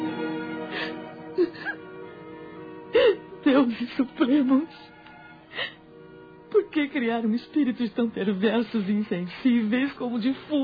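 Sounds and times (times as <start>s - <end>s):
woman crying deep sobs and whimpers in her bedroom: 0.7s - 1.8s, 2.9s - 4.8s, 5.5s - 5.9s
speech: 3.6s - 5.0s, 6.8s - 10.6s.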